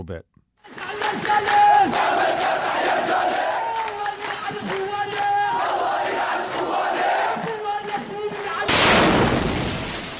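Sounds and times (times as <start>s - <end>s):
speech: 0.0s - 3.4s
large crowd chanting in unison at funeral procession: 0.6s - 8.7s
powerful explosion with broad roaring blast: 8.7s - 10.1s.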